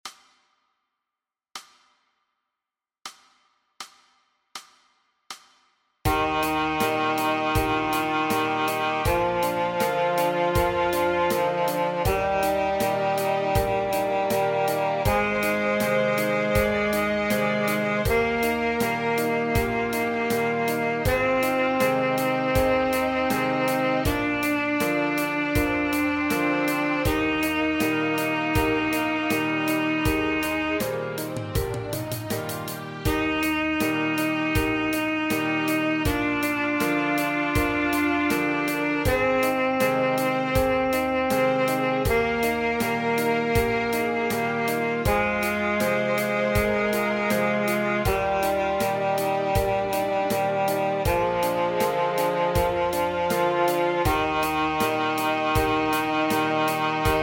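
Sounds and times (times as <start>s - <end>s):
C scale: 6.1s - 57.2s.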